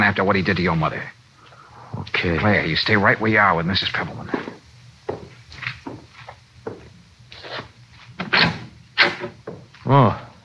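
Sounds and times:
speech: 0:00.1 - 0:01.2, 0:01.9 - 0:04.6, 0:09.9 - 0:10.2
door knocking as it swings: 0:09.2 - 0:09.7.

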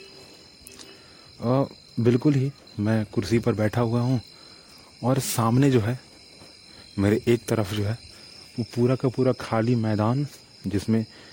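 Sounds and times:
crickets chirping at night: 0:00.0 - 0:11.3
speech: 0:01.4 - 0:04.4, 0:05.0 - 0:06.1, 0:07.0 - 0:11.3.

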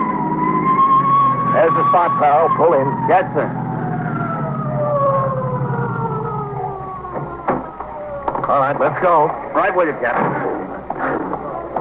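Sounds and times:
approaching emergency vehicle siren wailing: 0:00.0 - 0:09.2
heavy low engine rumble: 0:00.0 - 0:11.7
speech: 0:01.6 - 0:03.6, 0:08.5 - 0:11.2.

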